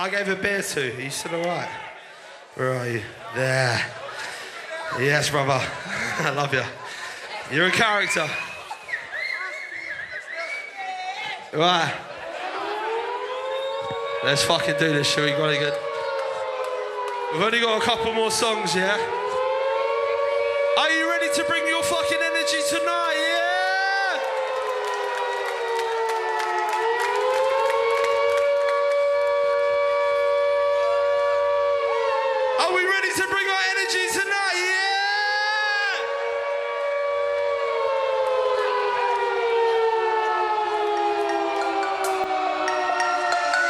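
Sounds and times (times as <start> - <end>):
loud civil defense siren wailing: 0.0 - 0.2, 12.4 - 43.6
speech: 0.0 - 1.9, 2.6 - 4.0, 4.9 - 6.8, 7.5 - 8.5, 11.5 - 12.1, 14.2 - 15.8, 17.3 - 19.2
live crowd cheering: 0.0 - 43.6
laughter: 2.6 - 10.6, 11.6 - 13.3.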